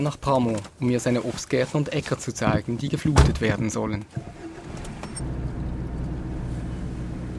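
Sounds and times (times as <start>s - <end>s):
speech: 0.0s - 4.4s
off-road vehicle engine rumble while driving: 4.2s - 7.3s.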